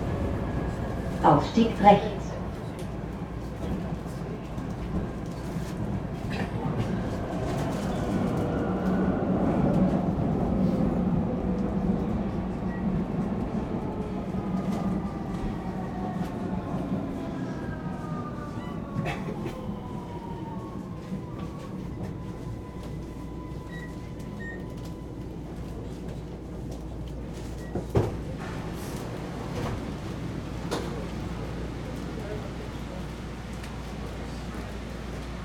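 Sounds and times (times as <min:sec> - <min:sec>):
S-Bahn commuter train rumbling at a station: 0:00.0 - 0:35.4
speech: 0:01.2 - 0:02.3.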